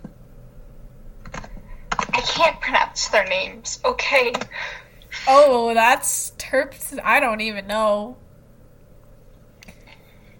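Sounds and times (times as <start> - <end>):
low steady room hum: 0.0 - 10.3
typing on a computer keyboard: 1.2 - 2.5, 4.2 - 4.6
speech: 2.2 - 8.2.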